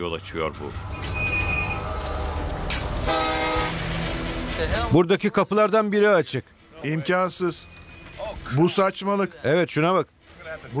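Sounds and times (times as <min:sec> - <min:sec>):
speech: 0:00.0 - 0:01.2, 0:04.6 - 0:07.8, 0:08.4 - 0:10.7
train body vibrating and rumbling on rails: 0:00.2 - 0:05.0
brief high squeal of train: 0:00.8 - 0:04.7, 0:07.6 - 0:08.4.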